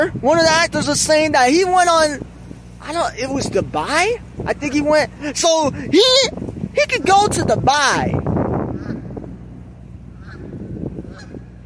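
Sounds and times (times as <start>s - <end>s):
speech: 0.0s - 8.2s
low rumble: 0.0s - 11.6s
geese honking: 8.7s - 9.2s, 10.1s - 11.6s.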